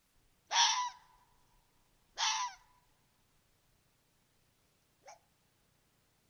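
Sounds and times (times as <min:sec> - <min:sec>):
common red fox barking: 0:00.5 - 0:01.1, 0:02.2 - 0:02.7.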